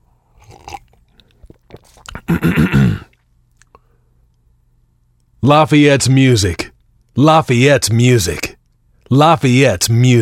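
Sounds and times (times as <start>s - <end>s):
person noisily sipping tea: 0.2s - 3.9s
swallowing: 0.3s - 3.8s
speech: 2.3s - 3.1s, 5.4s - 8.5s, 9.1s - 10.2s.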